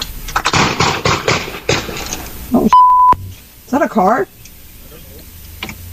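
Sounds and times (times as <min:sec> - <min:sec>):
gunshots fired at an intersection recorded by a doorbell security camera: 0:00.4 - 0:02.3
brief electronic beep: 0:02.6 - 0:03.2
speech: 0:03.7 - 0:04.4.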